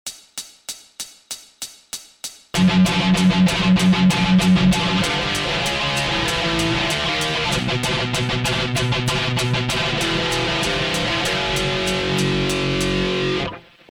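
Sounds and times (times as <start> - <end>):
thrash metal music: 2.6 - 13.6.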